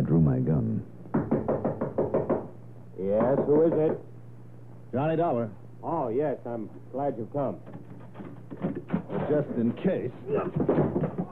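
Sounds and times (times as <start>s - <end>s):
knocking on a wooden door: 1.1s - 2.6s, 3.2s - 4.0s, 10.4s - 11.3s
speech: 3.3s - 4.1s, 4.9s - 7.9s, 8.6s - 11.2s.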